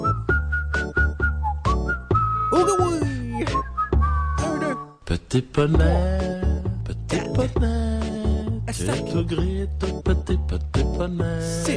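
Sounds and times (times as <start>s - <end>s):
steady low instrumental backing with rhythmic beats: 0.0s - 4.9s, 5.7s - 11.7s
several people whistling a bouncy song melody: 0.0s - 5.0s
speech: 5.3s - 6.4s, 7.4s - 8.0s, 8.7s - 11.7s.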